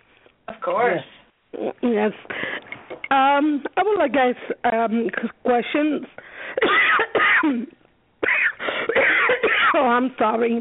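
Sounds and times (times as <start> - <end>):
speech: 0.7 - 2.4, 3.1 - 6.8, 9.8 - 10.5
person coughing in a harsh fit: 6.6 - 9.8.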